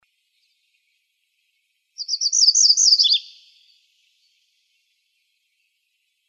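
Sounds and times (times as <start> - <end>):
MacGillivray's warbler singing in Arizona: 2.0 - 5.7.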